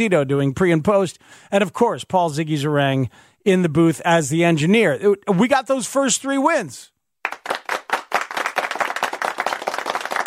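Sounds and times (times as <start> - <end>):
speech: 0.0 - 6.9
applause from a small group: 7.2 - 10.2.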